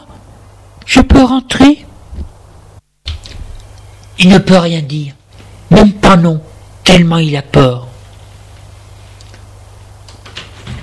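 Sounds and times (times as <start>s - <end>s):
speech: 0.9s - 1.8s, 4.2s - 7.9s
door opening quietly with a sliding scrape: 3.0s - 3.6s, 10.2s - 10.8s.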